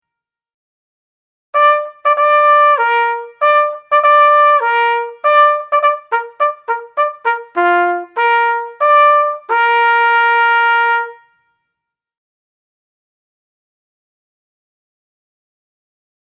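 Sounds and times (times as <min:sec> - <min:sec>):
bugle call: 0:01.6 - 0:11.3.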